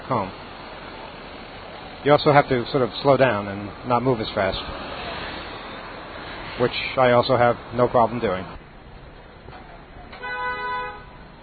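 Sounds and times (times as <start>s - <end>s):
rumble of a busy street: 0.0s - 11.4s
speech: 0.1s - 0.4s, 2.0s - 4.9s, 6.6s - 8.6s
single car horn honking: 10.1s - 11.2s.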